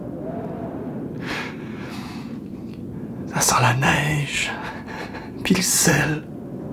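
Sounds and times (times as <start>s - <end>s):
ocean waves roaring: 0.1s - 6.6s
speech: 3.5s - 4.8s, 5.5s - 6.3s.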